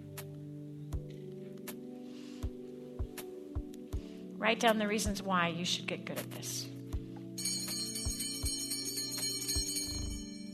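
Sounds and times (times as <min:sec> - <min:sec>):
speech: 0:04.4 - 0:06.7
automatic bell ringing: 0:07.4 - 0:10.5.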